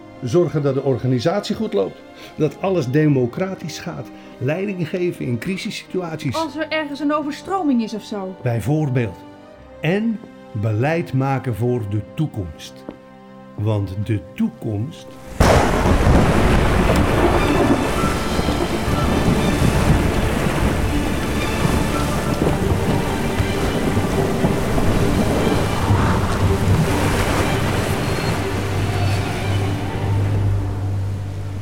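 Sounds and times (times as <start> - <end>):
speech: 0.2 - 12.9, 13.6 - 16.6
steady dense rain in a heavy thunderstorm: 15.1 - 31.6
deep rolling thunder of a heavy thunderstorm: 15.2 - 30.4.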